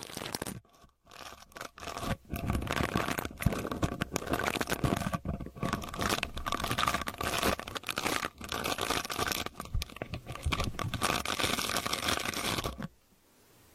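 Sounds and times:
earpick scraping and scratching inside the ear: 0.2s - 12.9s.

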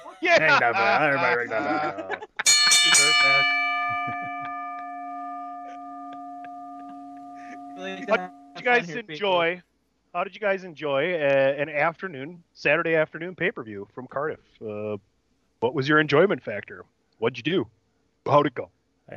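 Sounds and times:
laughter: 0.0s - 4.5s, 8.0s - 9.6s, 10.2s - 15.0s, 15.6s - 17.6s
speech: 0.2s - 2.2s, 2.8s - 4.2s, 7.8s - 19.1s
loud metallic bell strike ringing: 2.4s - 9.0s.

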